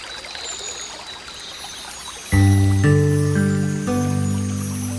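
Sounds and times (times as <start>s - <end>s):
melody: 2.2s - 4.9s.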